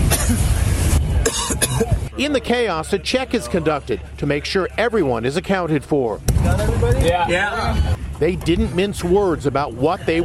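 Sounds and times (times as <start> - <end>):
men coughing inside a vehicle: 0.0 - 0.5, 1.2 - 2.0
steady low rumble outside the vehicle: 0.0 - 10.2
speech: 0.3 - 0.5, 2.2 - 10.2.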